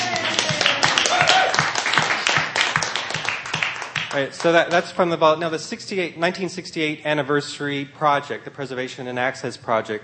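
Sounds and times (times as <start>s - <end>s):
murmuring voices: 0.0s - 1.6s
many people clapping together: 0.0s - 5.0s
speech: 4.2s - 10.0s.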